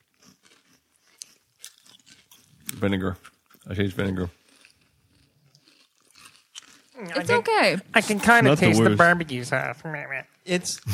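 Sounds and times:
all dressed potato chip crunching being eaten: 0.0 - 7.0
speech: 2.8 - 4.4, 7.2 - 10.9.

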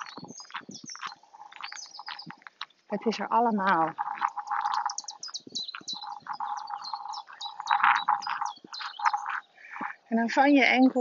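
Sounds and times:
birds singing outdoors: 0.0 - 11.0
speech: 2.9 - 4.0, 10.2 - 11.0.

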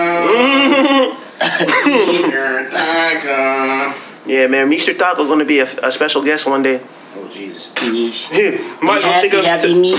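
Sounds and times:
throaty vocal voicing: 0.0 - 3.1
person coughing: 0.9 - 3.0
speech: 1.6 - 9.9.

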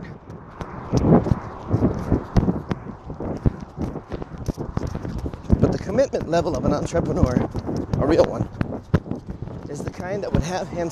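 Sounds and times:
rumbling background: 0.0 - 10.9
running footsteps across a crosswalk: 0.0 - 10.9
speech: 0.9 - 1.4, 6.1 - 8.6, 9.7 - 10.9.

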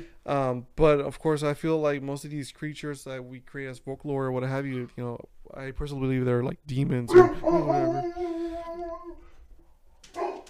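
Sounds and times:
speech: 0.0 - 8.4
large dog barking: 7.1 - 8.0, 10.1 - 10.4.

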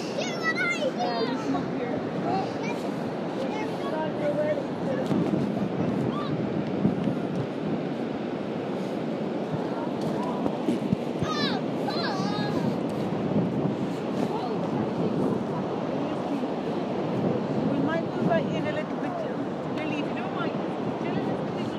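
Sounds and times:
faint voices murmuring: 0.0 - 21.7
roaring Atlantic Ocean surf washing onto a beach: 0.0 - 21.7
wind buffeting an iPhone 6 microphone inside a jumper: 0.0 - 21.7.

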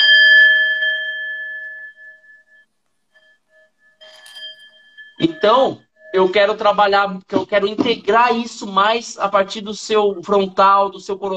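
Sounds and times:
high-pitched Tibetan singing bowl ringing: 0.0 - 7.1
speech: 5.2 - 11.3.

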